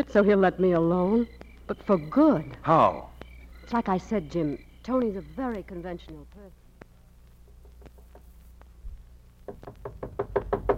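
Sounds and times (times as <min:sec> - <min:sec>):
speech: 0:00.0 - 0:06.6
sharp knocks on a door: 0:09.4 - 0:10.7.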